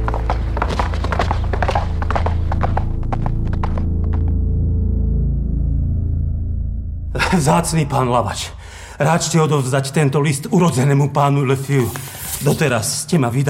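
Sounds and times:
horses hooves clip-clopping: 0:00.0 - 0:04.3
low rumble and hum: 0:00.0 - 0:09.4
speech: 0:07.3 - 0:13.4.

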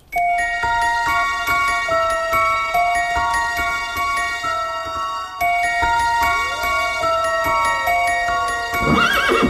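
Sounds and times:
steady chiming melody of bell-like notes: 0:00.0 - 0:09.4
horse neighing in a stable: 0:08.8 - 0:09.4.

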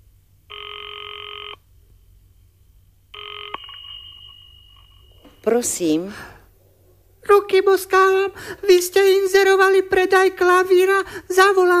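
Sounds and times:
low hum: 0:00.0 - 0:11.7
telephone ringing with an electronic trill: 0:00.5 - 0:01.6, 0:03.1 - 0:05.6
speech: 0:05.5 - 0:06.3, 0:07.3 - 0:11.7.

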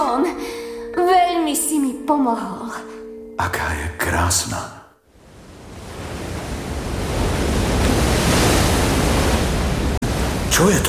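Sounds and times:
speech: 0:01.5 - 0:04.8, 0:10.6 - 0:10.8
heavy surf crashing: 0:05.2 - 0:10.8.

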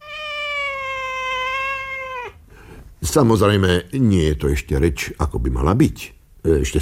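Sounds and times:
person imitating a cat meowing: 0:00.0 - 0:02.4
speech: 0:03.0 - 0:06.8.

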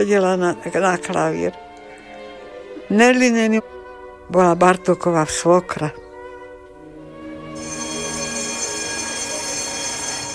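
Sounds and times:
speech: 0:00.0 - 0:01.7, 0:02.9 - 0:06.0
tram wheels squealing: 0:07.6 - 0:10.3.

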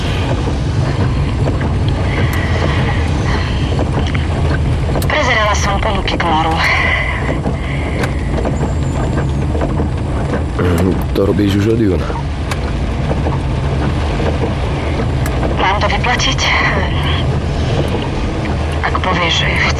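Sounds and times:
deep road rumble: 0:00.0 - 0:19.7
heavy rain pouring over a moving vehicle: 0:00.0 - 0:19.7
speech: 0:11.2 - 0:12.3, 0:16.2 - 0:16.9, 0:19.0 - 0:19.7.

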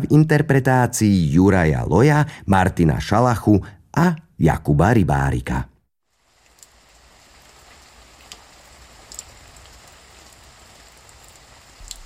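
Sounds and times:
speech: 0:00.1 - 0:05.7
steady rain falling: 0:06.1 - 0:12.0.

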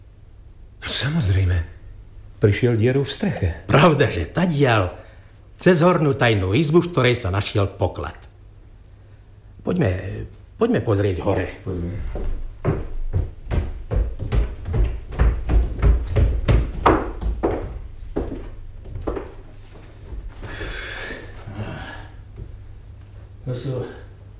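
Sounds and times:
speech: 0:00.9 - 0:01.8, 0:02.4 - 0:05.0, 0:05.6 - 0:08.2, 0:09.6 - 0:12.8
wooden thumps: 0:12.2 - 0:19.4.

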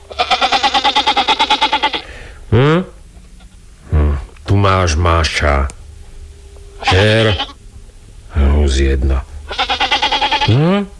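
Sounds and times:
goat bleating: 0:00.0 - 0:02.1, 0:06.8 - 0:07.6, 0:09.5 - 0:10.9
speech: 0:02.6 - 0:02.9, 0:04.8 - 0:05.8, 0:06.8 - 0:07.5, 0:08.7 - 0:09.8, 0:10.4 - 0:10.9.

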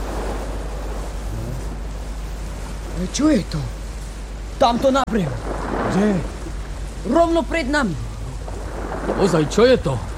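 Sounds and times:
sea waves and surf: 0:00.0 - 0:01.2, 0:05.2 - 0:10.1
speech: 0:03.0 - 0:03.8, 0:04.6 - 0:06.3, 0:07.0 - 0:08.0, 0:09.1 - 0:10.1.

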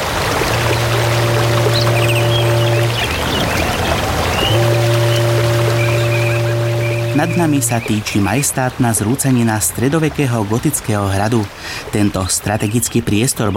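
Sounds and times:
steady low engine drone: 0:00.0 - 0:08.8
rushing river water where the Morava flows into the Danube at Devín: 0:00.0 - 0:13.5
speech: 0:07.2 - 0:13.5.

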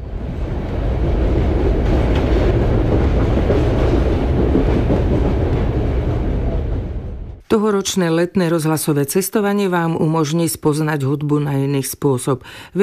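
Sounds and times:
train rolling along the rails: 0:00.0 - 0:07.4
rhythmic clickety-clack from the train wheels: 0:01.8 - 0:06.0
speech: 0:07.5 - 0:12.8.

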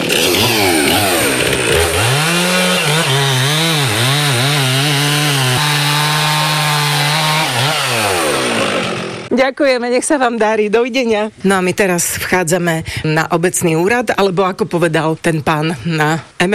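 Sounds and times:
chainsaw engine revving in the village of Kolonica: 0:00.0 - 0:09.3
speech: 0:09.4 - 0:16.5.

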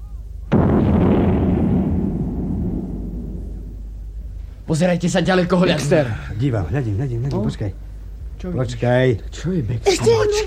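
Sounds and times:
loaded cannon firing: 0:00.5 - 0:04.1
speech: 0:04.7 - 0:10.4.

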